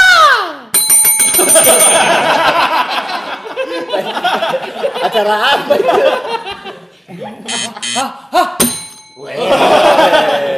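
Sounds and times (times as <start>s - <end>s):
bell ringing with a bright metallic tone: 0.8s - 4.6s, 8.6s - 9.6s
speech: 1.6s - 2.1s, 5.1s - 6.6s, 7.2s - 8.6s
laughter: 1.6s - 8.6s, 9.2s - 10.5s.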